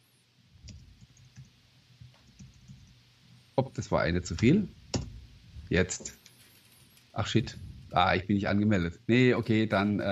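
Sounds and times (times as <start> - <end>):
computer keyboard typing a chat message: 0.6 - 3.0
speech: 3.6 - 4.8, 5.7 - 6.2, 7.2 - 10.1.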